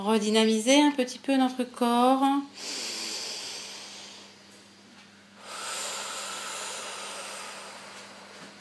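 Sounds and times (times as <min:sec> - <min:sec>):
speech: 0:00.0 - 0:02.9
faint steady hum: 0:00.0 - 0:08.5
slow deep breath in and out: 0:02.6 - 0:04.5, 0:05.4 - 0:08.5.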